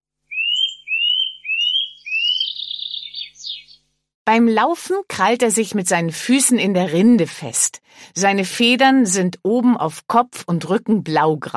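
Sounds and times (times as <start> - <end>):
Eurasian nuthatch calling with rising whistled notes and twittering: 0.3 - 3.8
speech: 4.3 - 11.5.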